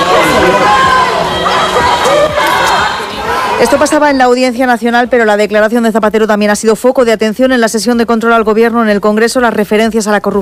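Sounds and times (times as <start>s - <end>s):
people shouting angrily outside a court: 0.0s - 4.0s
overlapping babble of a dense crowd outside a court: 0.0s - 5.7s
speech: 3.6s - 10.4s.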